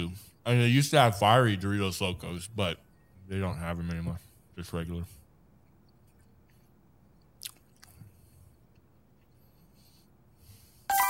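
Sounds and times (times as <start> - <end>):
speech: 0.0 - 5.2
chewing a soft shell taco: 5.9 - 9.4
mouth clicks: 7.2 - 8.0.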